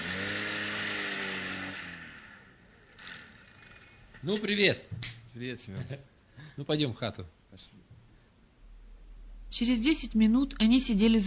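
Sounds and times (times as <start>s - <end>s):
car engine idling and revving as the car pulls into a yard: 0.0s - 4.2s
speech: 4.2s - 7.9s, 9.5s - 11.2s.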